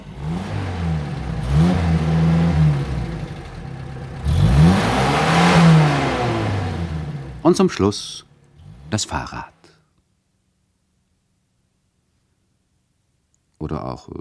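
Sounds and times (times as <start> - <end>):
car engine revving while driving: 0.0 - 9.5
speech: 7.5 - 8.3, 8.9 - 9.5, 13.6 - 14.2.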